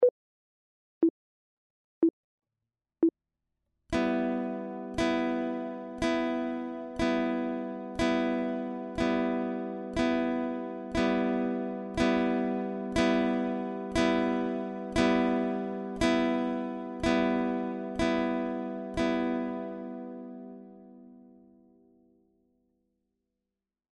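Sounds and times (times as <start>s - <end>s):
guitar chord: 3.9s - 21.8s.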